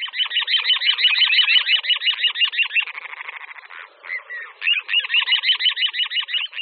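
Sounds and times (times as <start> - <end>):
little ringed plover calling in high rasping notes and trills: 0.0 - 6.6.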